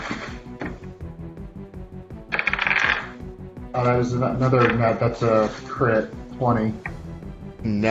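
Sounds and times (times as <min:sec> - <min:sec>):
dice rolling on a hard tabletop: 0:02.3 - 0:03.2, 0:04.4 - 0:05.6
speech: 0:03.8 - 0:06.9, 0:07.6 - 0:07.8.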